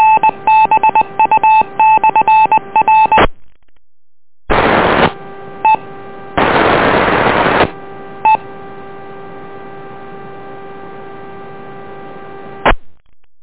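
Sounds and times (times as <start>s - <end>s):
telephone touch-tone beeps on a county traffic and emergency amateur radio net: 0.0s - 3.2s
harsh bursts of static-like hiss with faint tones: 4.5s - 5.8s, 6.4s - 7.8s.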